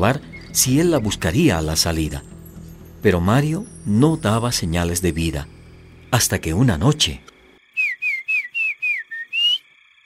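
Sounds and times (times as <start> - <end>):
speech: 0.0 - 2.3, 3.0 - 7.3
person whistling a signal at night: 7.8 - 9.6.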